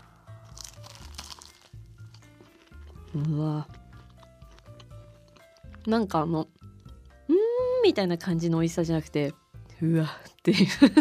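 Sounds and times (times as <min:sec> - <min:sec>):
person biting into a baked banana-filled sweet with a caramelized surface: 0:00.0 - 0:05.8
speech: 0:03.1 - 0:03.8, 0:05.8 - 0:06.5, 0:07.8 - 0:10.9.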